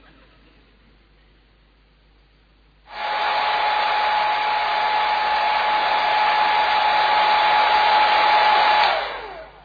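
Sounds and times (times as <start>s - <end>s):
hair dryer running with a whirring roar and whine: 2.9s - 9.6s.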